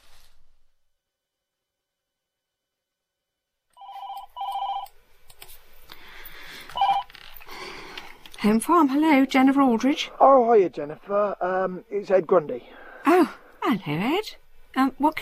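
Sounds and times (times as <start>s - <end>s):
electronic telephone keypad tones: 3.8s - 4.9s, 6.8s - 7.1s
speech: 8.4s - 15.2s.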